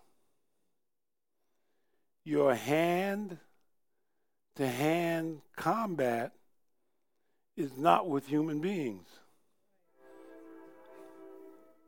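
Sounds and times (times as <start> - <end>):
speech: 2.3 - 3.5, 4.6 - 6.4, 7.6 - 9.2
train horn blast: 9.9 - 11.8.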